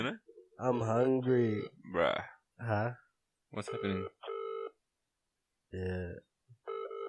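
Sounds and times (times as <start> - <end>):
speech: 0.0 - 4.2, 5.7 - 6.3
electronic phone tones of a call to a business ringing out: 3.7 - 4.7, 6.7 - 7.0.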